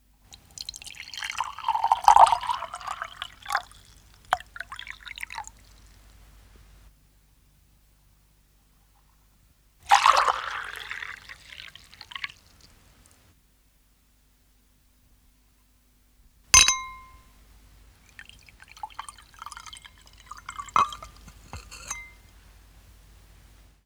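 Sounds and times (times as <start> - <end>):
pouring into small glasses: 0.3 - 6.0, 9.9 - 12.6, 18.1 - 22.4.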